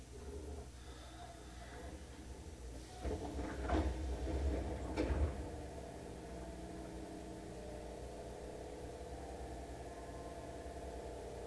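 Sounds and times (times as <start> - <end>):
steady low rumble: 1.6 - 11.4
right-side train doors sliding open at a station: 2.8 - 7.2.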